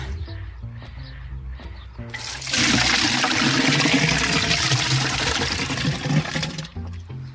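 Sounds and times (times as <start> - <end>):
bucket clunks: 2.1 - 7.0
buckets of water and horse manure poured into a household biogas tank: 2.2 - 7.0.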